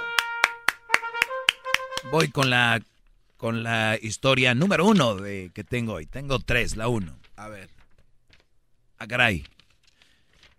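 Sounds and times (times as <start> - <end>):
sharp hand claps: 0.0 - 2.6
speech: 2.0 - 7.8, 9.0 - 9.6.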